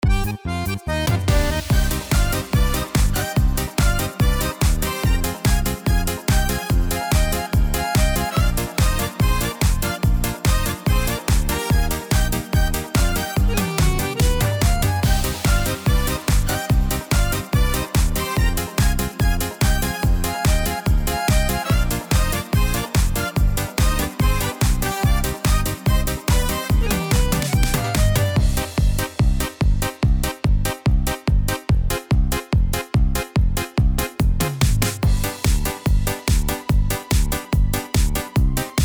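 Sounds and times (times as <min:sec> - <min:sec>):
disco style music on a Yamaha Genos keyboard: 0:00.0 - 0:38.8.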